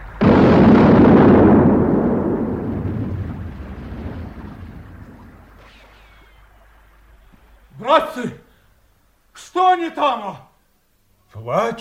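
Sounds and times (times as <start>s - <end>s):
heavy artillery gun firing a fragmentation shell at a building's windows: 0.0s - 6.4s
speech: 9.8s - 10.5s, 11.4s - 11.7s.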